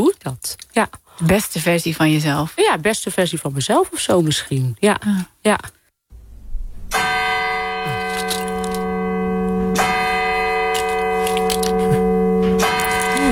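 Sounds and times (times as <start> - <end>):
speech: 0.0 - 5.8
large church bell tolling: 6.2 - 13.3.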